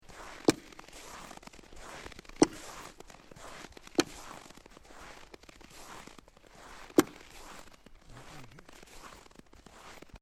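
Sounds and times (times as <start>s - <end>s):
footsteps walking on snow: 0.0s - 10.1s.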